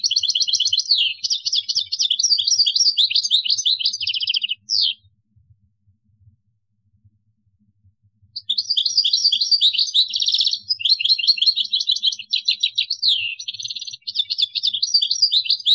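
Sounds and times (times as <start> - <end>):
European goldfinch song: 0.0 - 5.1, 8.4 - 15.7.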